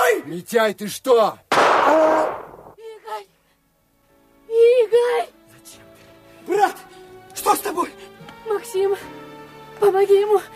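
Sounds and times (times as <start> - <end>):
speech: 0.2 - 2.5, 4.6 - 5.8, 6.4 - 9.2, 9.8 - 10.5
gunshot: 1.5 - 2.8.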